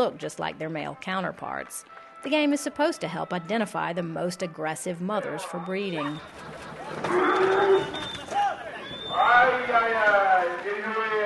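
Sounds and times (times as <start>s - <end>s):
speech: 0.0s - 8.2s, 9.2s - 11.2s
laughter: 5.7s - 11.2s
angry Camargue cow mooing in an open arena: 7.1s - 8.0s.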